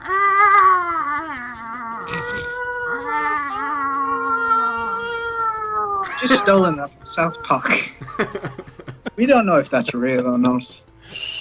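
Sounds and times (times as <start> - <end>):
person imitating a cat in heat yowling: 0.0 - 8.0
laughter: 6.0 - 6.8, 7.6 - 10.6
speech: 6.2 - 11.3.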